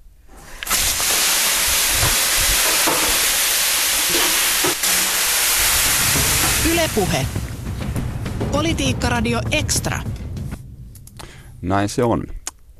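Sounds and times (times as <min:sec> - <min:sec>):
water thrown onto hot sauna stones bursting into steam hiss: 0:00.3 - 0:07.6
speech: 0:06.8 - 0:07.5, 0:08.5 - 0:10.2, 0:11.6 - 0:12.4.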